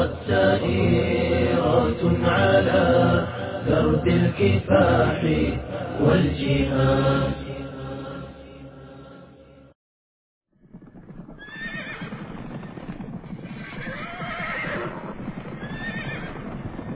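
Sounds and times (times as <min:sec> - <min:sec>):
speech: 0:00.3 - 0:01.2, 0:01.9 - 0:07.4
horse hooves clip-clopping rapidly: 0:10.5 - 0:16.9
horse neighing: 0:11.4 - 0:12.2, 0:13.6 - 0:16.4.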